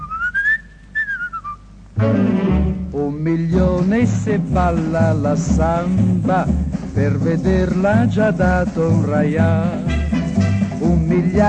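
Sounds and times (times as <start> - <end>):
crowd whistling along with an Italian song: 0.0 - 1.6
soft low musical accompaniment: 1.6 - 11.4
speech: 2.0 - 2.5, 3.2 - 10.0, 10.8 - 11.4.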